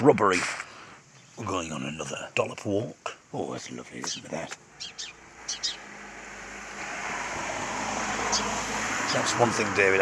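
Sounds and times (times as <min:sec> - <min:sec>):
speech: 0:00.0 - 0:00.7, 0:01.4 - 0:05.6, 0:09.1 - 0:09.9
bird chirps: 0:01.1 - 0:02.0, 0:03.7 - 0:06.0, 0:08.2 - 0:09.2
car passing on a quiet country road: 0:05.2 - 0:09.9.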